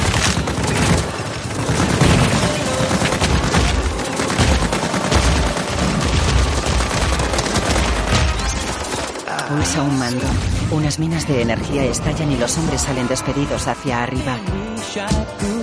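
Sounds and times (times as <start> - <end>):
rapid gunfire from looters' weapons in a science-fiction action film: 0.0 - 9.5
speech: 9.7 - 15.5.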